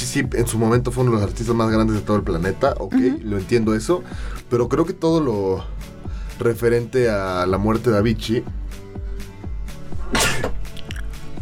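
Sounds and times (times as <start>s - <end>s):
speech: 0.1s - 8.6s
rhythmic musical beat: 1.8s - 4.0s
sneeze: 10.1s - 10.6s.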